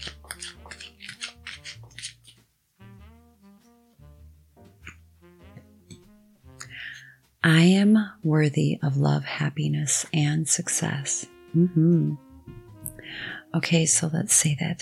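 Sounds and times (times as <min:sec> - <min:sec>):
deck of affirmation cards being shuffled: 0:00.0 - 0:02.5
soft tonal music bed: 0:00.0 - 0:14.7
speech: 0:07.4 - 0:12.6, 0:13.5 - 0:14.7.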